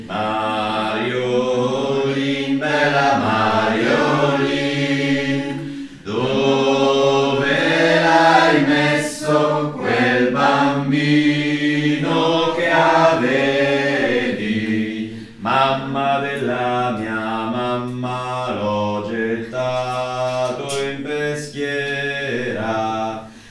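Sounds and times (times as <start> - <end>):
contraltos singing: 0.0 - 23.4.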